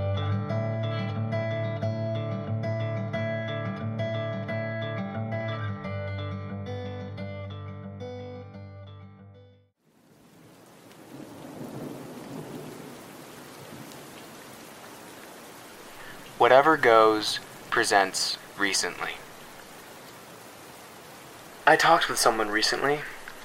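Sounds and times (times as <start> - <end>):
music: 0.0 - 9.7
heavy rain: 9.8 - 23.4
low rolling thunder: 11.1 - 14.0
speech: 16.4 - 19.2, 21.7 - 23.1.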